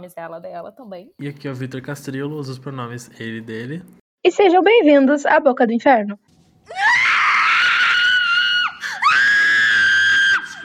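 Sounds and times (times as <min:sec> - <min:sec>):
speech: 0:00.0 - 0:06.8
piercing screams in podcast intro jingle: 0:06.7 - 0:10.6.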